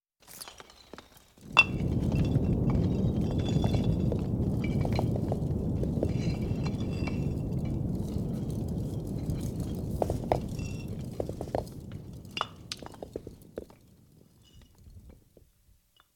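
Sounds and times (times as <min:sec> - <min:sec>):
landslide disaster: 0:00.4 - 0:15.4.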